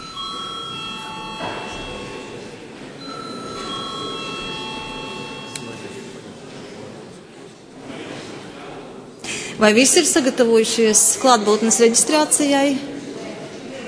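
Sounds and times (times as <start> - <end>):
electric bell rung during a session of the Latvian parliament: 0.0 - 6.2
low murmur of the parliament chamber: 0.0 - 13.8
speech: 9.6 - 13.0.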